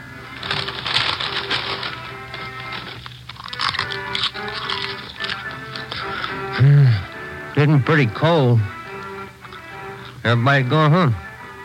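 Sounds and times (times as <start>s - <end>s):
crunching and crackling: 0.0s - 7.6s, 8.7s - 10.3s
steady low hum: 0.0s - 11.6s
speech: 7.6s - 8.8s, 10.3s - 11.2s.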